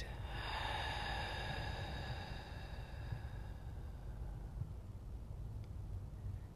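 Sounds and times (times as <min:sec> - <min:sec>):
person taking a deep breath in and out during guided meditation: 0:00.0 - 0:04.8
low hum: 0:00.0 - 0:06.5.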